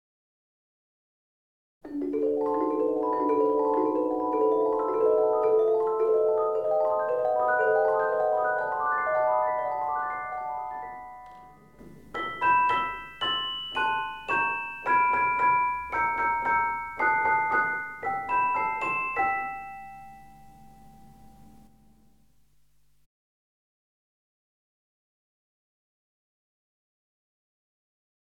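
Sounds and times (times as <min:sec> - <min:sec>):
celesta: 0:01.8 - 0:22.1.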